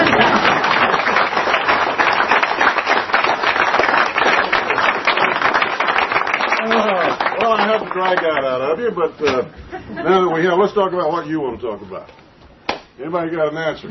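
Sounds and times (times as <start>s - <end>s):
audience clapping at a restaurant: 0.0s - 8.7s
speech: 8.1s - 12.2s, 13.0s - 13.8s.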